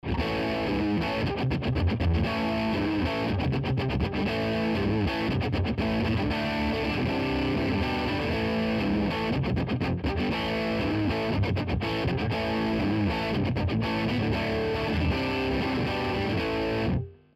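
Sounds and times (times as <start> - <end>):
electric guitar through overdrive: 0.0 - 17.2.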